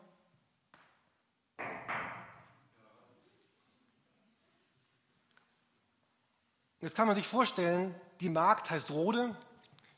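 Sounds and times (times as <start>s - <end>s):
knocking on a door: 1.6s - 2.4s
speech: 6.8s - 9.5s.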